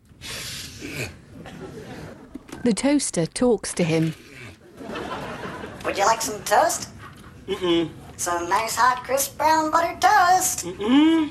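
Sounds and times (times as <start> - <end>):
person sniffing a book: 0.2 - 1.2
laughter: 1.4 - 2.5, 4.6 - 6.4
speech: 2.6 - 4.2, 6.0 - 6.9, 7.5 - 11.2.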